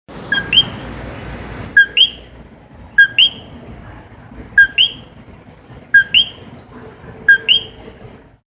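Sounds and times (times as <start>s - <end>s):
coqui frog calling in Puerto Rico: 0.3s - 0.8s, 1.8s - 2.3s, 3.0s - 3.4s, 4.6s - 5.0s, 6.0s - 6.7s, 7.3s - 7.8s.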